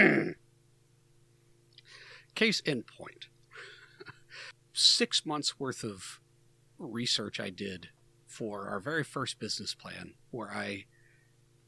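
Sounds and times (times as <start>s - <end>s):
throat clearing: 0.0s - 0.4s
faint low hum: 0.0s - 11.6s
speech: 2.4s - 3.3s, 4.8s - 6.2s, 6.8s - 10.9s.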